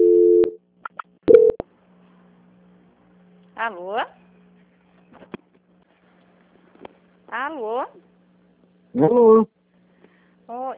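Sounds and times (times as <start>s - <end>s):
telephone line tone during call transfer: 0.0s - 0.6s, 1.3s - 1.6s
speech: 3.6s - 4.2s, 7.3s - 8.1s, 9.0s - 9.6s, 10.5s - 10.7s.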